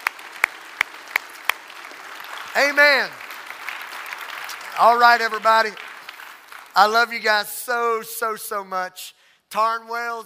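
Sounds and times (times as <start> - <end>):
congregation clapping in rhythm: 0.0 - 7.4
speech: 2.6 - 3.2, 4.8 - 5.8, 6.8 - 10.2.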